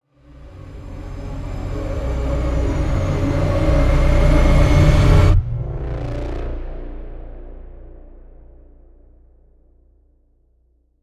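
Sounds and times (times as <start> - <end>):
horror cinematic string riser: 0.5 - 9.1.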